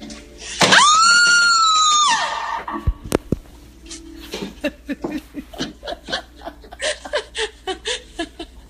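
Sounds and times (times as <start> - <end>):
woman screaming in a haunted-house hallway in Georgia: 0.7 - 2.6
rhythmic laughter: 4.3 - 8.6.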